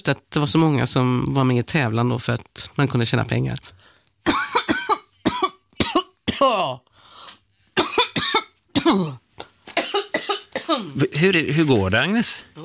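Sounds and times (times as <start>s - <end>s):
speech: 0.0s - 4.5s, 8.8s - 9.2s, 10.7s - 12.6s
loud coughing fit: 4.3s - 6.8s, 7.8s - 9.2s, 9.8s - 11.0s.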